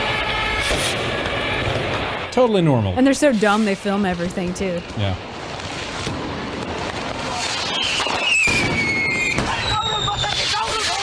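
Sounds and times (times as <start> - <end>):
shrill whistling rockets: 0.0 - 2.3, 5.6 - 11.0
fireworks crackling and popping: 0.0 - 11.0
speech: 2.4 - 5.3.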